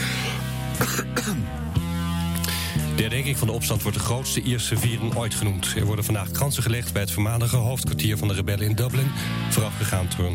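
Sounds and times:
short dry coughs from a tickle in the throat: 0.0s - 1.6s
speech: 0.9s - 1.8s, 3.0s - 10.3s.

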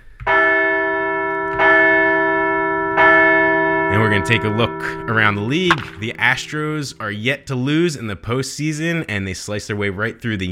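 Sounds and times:
large bell ringing: 0.3s - 7.8s
speech: 4.1s - 10.5s.

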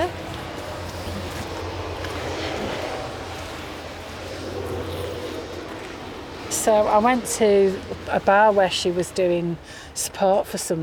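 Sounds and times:
train rumbling past: 0.0s - 9.6s
speech: 6.6s - 10.8s.

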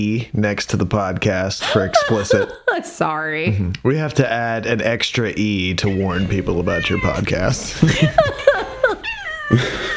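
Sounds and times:
speech: 0.0s - 8.6s, 9.5s - 9.8s
laughter: 1.6s - 2.8s, 6.0s - 9.9s
cat meowing and yowling loudly: 5.8s - 9.9s.

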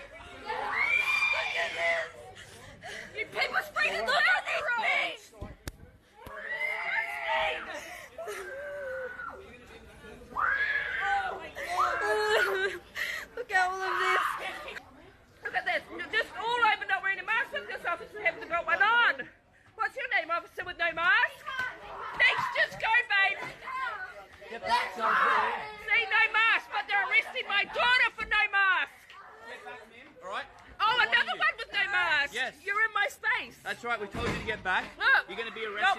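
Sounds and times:
frantic overlapping voices: 0.0s - 35.9s
women and children screaming and crying: 0.4s - 2.1s, 6.3s - 9.4s, 10.4s - 12.5s
laughter: 7.5s - 9.2s, 11.3s - 14.8s.

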